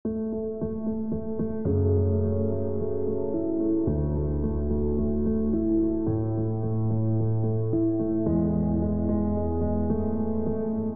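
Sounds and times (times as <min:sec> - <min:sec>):
piano with all effects: 0:00.0 - 0:10.9.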